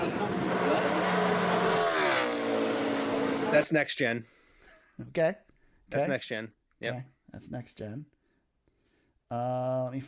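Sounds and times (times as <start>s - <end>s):
race car engine revving: 0.0s - 3.7s
speech: 3.5s - 4.4s, 5.0s - 8.1s, 9.3s - 10.0s.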